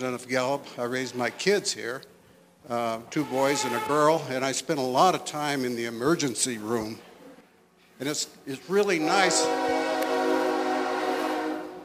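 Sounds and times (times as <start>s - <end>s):
speech: 0.0s - 7.1s, 8.0s - 9.6s
train horn blaring as the train passes: 3.1s - 4.3s, 8.9s - 11.8s.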